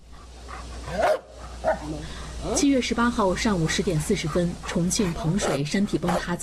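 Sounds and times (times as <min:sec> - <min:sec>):
faint steady hum: 0:00.0 - 0:06.4
Labrador search dog barking alert: 0:00.9 - 0:01.9, 0:05.4 - 0:06.3
speech: 0:01.9 - 0:06.4.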